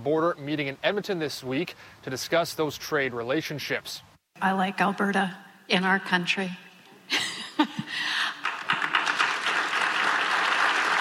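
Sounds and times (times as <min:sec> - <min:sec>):
speech: 0:00.0 - 0:08.2
round of applause from conference delegates: 0:08.2 - 0:10.9.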